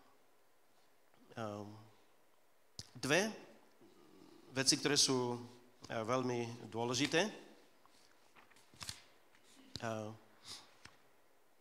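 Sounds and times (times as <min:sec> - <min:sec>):
speech: 0:03.0 - 0:03.4, 0:04.6 - 0:07.5, 0:09.8 - 0:10.6
papers rustling and shuffling: 0:07.8 - 0:09.9.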